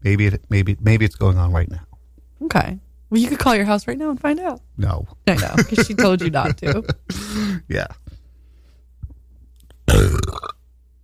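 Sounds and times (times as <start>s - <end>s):
speech: 0.0s - 8.0s
laughter: 5.4s - 7.3s
person burping: 9.9s - 10.6s.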